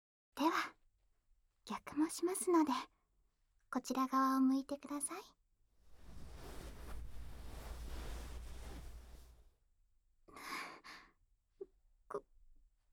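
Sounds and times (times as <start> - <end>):
speech: 1.7 - 2.9, 3.7 - 5.4, 12.1 - 12.3
breath blowing against the ear: 5.9 - 9.4.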